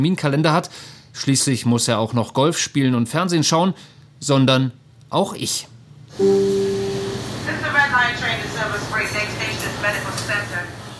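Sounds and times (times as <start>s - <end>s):
speech: 0.0s - 6.9s
harmonic tone: 6.2s - 7.7s
crowded subway train rumbling in motion: 6.2s - 10.8s.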